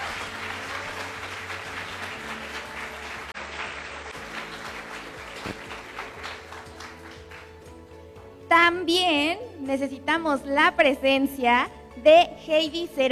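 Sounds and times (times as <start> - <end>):
audience applause: 0.0 - 7.7
speech: 8.9 - 13.1.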